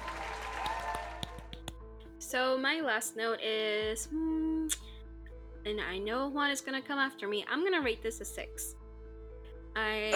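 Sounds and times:
applause of many hands clapping: 0.0 - 1.7
sharp individual claps: 0.0 - 1.8
speech: 2.3 - 4.8, 5.7 - 8.8, 9.8 - 10.1.

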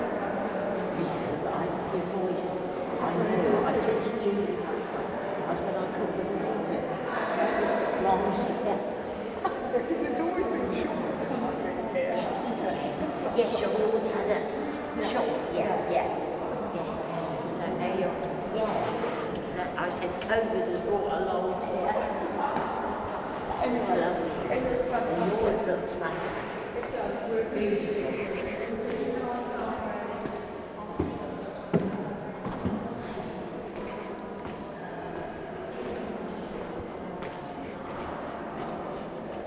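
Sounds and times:
many voices murmuring in a reverberant cathedral nave: 0.0 - 39.4
footsteps in a cathedral nave: 29.7 - 39.4.

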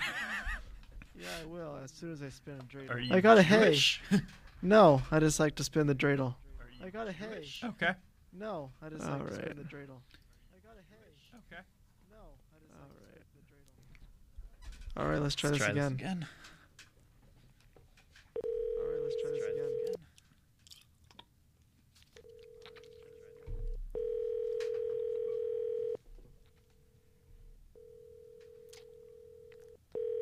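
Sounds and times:
speech: 1.2 - 10.2, 10.8 - 13.1, 15.0 - 16.5
phone ringing on an outgoing call: 18.4 - 20.0, 22.2 - 26.0, 27.8 - 30.2.

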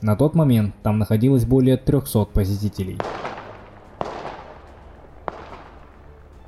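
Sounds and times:
speech: 0.0 - 3.3
gunshots: 3.0 - 6.4.

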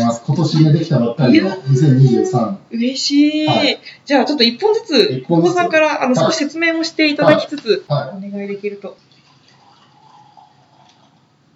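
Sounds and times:
speech: 0.4 - 9.1
2023 vintage wine pouring into a glass: 9.0 - 11.4.

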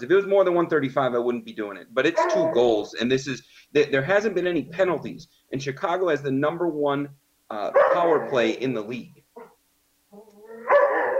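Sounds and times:
speech: 0.0 - 9.2
dog whining: 2.1 - 2.7, 9.4 - 11.1
dog barking loudly: 2.2 - 2.6, 7.8 - 8.4, 10.5 - 11.1.

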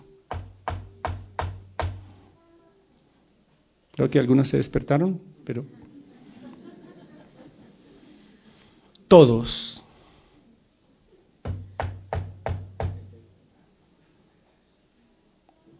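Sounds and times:
firm knocking on a wooden door: 0.3 - 2.2, 11.5 - 13.2
speech: 4.0 - 5.8, 9.1 - 9.8
laughter: 5.5 - 8.4.

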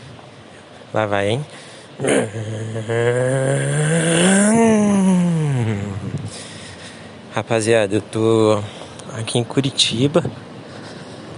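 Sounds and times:
speech: 0.9 - 5.0, 7.4 - 10.5
man imitating a car engine revving on a street in Curitiba: 2.0 - 6.3.

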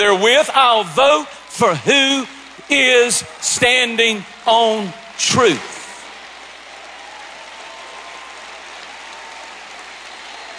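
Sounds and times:
speech: 0.0 - 5.8
crowd of many hands clapping: 0.0 - 10.5.

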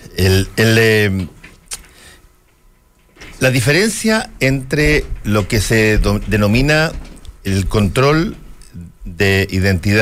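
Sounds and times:
speech: 0.2 - 1.4, 3.4 - 10.0
chair scraping: 0.5 - 9.5
chair being moved: 1.2 - 8.8.

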